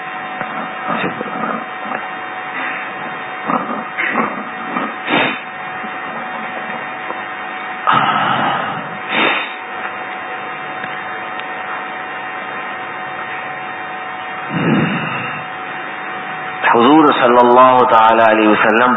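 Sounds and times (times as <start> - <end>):
electric fan whirring: 0.0 - 18.9
gusty bursts of air buffeting the microphone: 0.4 - 7.2, 14.5 - 15.6
speech: 17.9 - 18.9.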